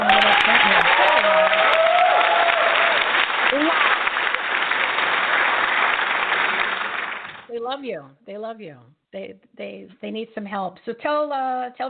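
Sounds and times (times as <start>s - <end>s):
whistle or cheer: 0.0s - 3.7s
crowd applauding: 0.0s - 7.5s
speech: 7.8s - 11.8s.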